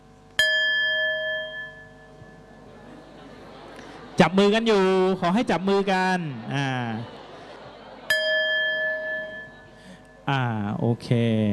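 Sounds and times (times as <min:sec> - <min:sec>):
bell struck as a signal: 0:00.4 - 0:02.7, 0:08.1 - 0:10.7
laughter: 0:02.6 - 0:10.0
speech: 0:04.2 - 0:07.2, 0:10.3 - 0:11.5.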